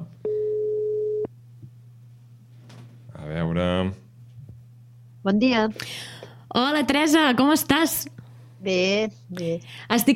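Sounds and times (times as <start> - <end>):
faint low hum: 0.0 - 10.1
phone ringback tone as a call is placed: 0.3 - 1.3
speech: 5.2 - 10.1.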